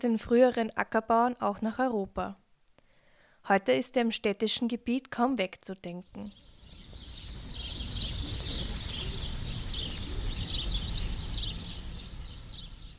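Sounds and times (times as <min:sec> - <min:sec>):
speech: 0:00.0 - 0:02.4, 0:03.4 - 0:06.9
house sparrows chirping: 0:06.1 - 0:12.9.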